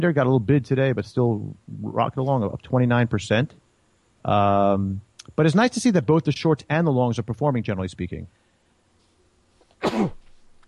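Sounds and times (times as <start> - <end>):
speech: 0.0 - 3.6, 4.2 - 8.4, 9.9 - 10.2
person sneezing: 9.7 - 10.3.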